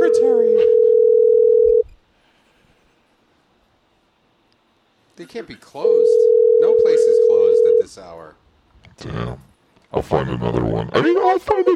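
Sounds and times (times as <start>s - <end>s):
telephone ringing tone on a call: 0.0s - 1.8s, 5.9s - 7.9s
speech: 5.3s - 11.7s.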